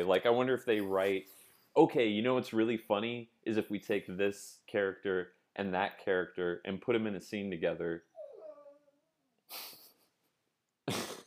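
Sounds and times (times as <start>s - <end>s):
speech: 0.0s - 8.1s, 9.5s - 9.8s
dog whimpering: 8.0s - 9.2s.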